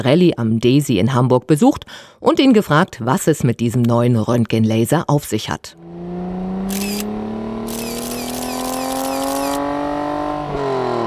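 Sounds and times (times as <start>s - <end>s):
speech: 0.0s - 5.9s
Formula 1 racing car engine passing: 5.8s - 11.0s
rapid camera shutter clicks: 6.7s - 7.1s, 7.7s - 9.7s.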